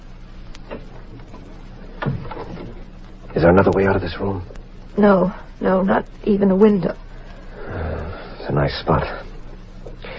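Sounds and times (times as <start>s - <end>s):
door pushed shut with a solid thud: 2.0s - 2.8s
speech: 3.4s - 7.0s, 8.5s - 9.2s.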